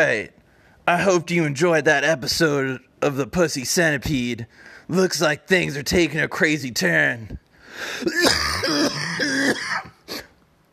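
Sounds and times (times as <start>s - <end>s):
speech: 0.0s - 10.2s
person coughing: 7.9s - 10.4s.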